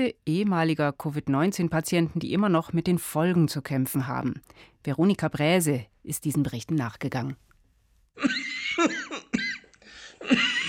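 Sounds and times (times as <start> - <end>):
speech: 0.0 - 7.4, 8.2 - 9.0, 10.2 - 10.6
harsh dry cough: 8.2 - 10.6.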